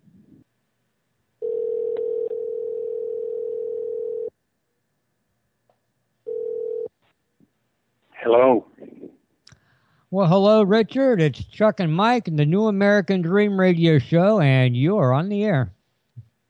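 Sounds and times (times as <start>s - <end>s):
telephone dial tone: 1.4s - 4.3s, 6.3s - 6.9s
speech: 8.3s - 8.7s, 10.1s - 15.8s.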